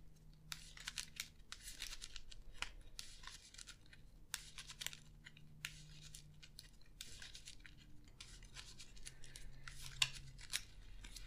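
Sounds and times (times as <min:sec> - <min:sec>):
deck of playing cards being shuffled during a card game: 0:00.4 - 0:11.2.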